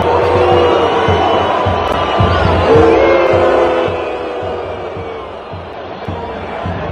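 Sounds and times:
huge stadium crowd roaring and jeering at a footballer: 0.0s - 6.9s.

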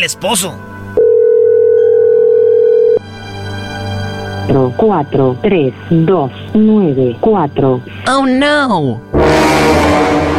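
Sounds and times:
speech: 0.0s - 0.8s, 4.5s - 10.3s
faint music: 0.0s - 9.1s
telephone dial tone while calling someone: 1.0s - 3.0s.

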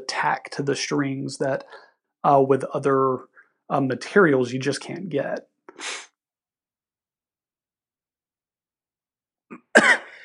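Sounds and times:
speech: 0.2s - 6.1s
sharp cough from a hair caught in the throat: 9.5s - 10.2s.

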